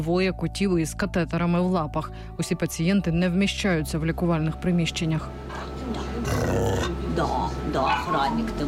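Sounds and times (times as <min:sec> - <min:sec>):
speech: 0:00.0 - 0:08.6
small dog barking: 0:07.8 - 0:08.4.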